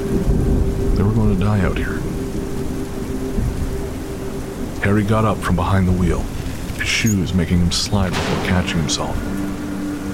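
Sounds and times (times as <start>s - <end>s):
deep thunder rumbling in a storm: 0.0s - 10.1s
heavy rain in a storm: 0.0s - 10.1s
speech: 1.4s - 2.1s, 4.8s - 9.3s.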